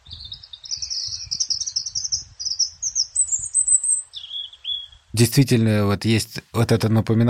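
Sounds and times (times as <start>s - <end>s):
European robin singing: 0.0s - 5.3s
speech: 5.2s - 7.2s.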